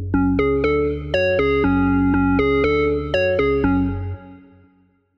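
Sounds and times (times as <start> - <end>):
Korg organ: 0.1 - 4.4.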